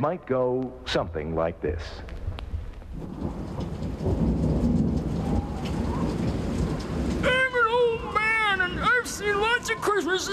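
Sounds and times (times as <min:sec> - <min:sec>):
speech: 0:00.0 - 0:02.2, 0:03.0 - 0:04.5, 0:09.2 - 0:10.3
heavy rain pouring with a low rumble: 0:02.0 - 0:10.3.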